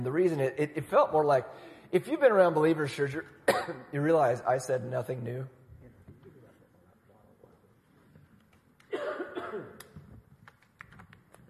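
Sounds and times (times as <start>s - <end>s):
speech: 0.0s - 5.6s
loud burst of harsh coughing: 3.4s - 3.9s, 8.9s - 9.8s.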